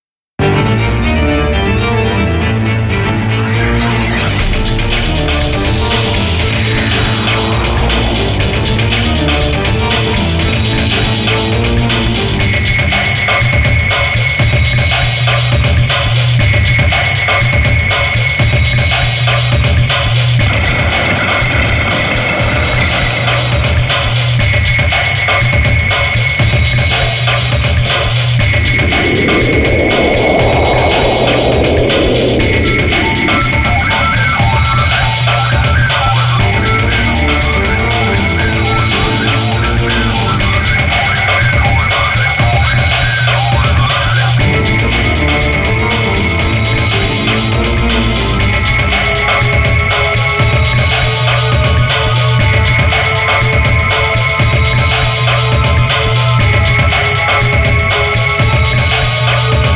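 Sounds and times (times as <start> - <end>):
cyber background music: 0.4 - 19.0, 19.6 - 59.7.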